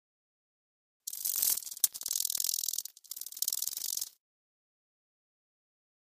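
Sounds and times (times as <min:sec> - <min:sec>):
beetle rattling hiss: 0:01.1 - 0:04.2.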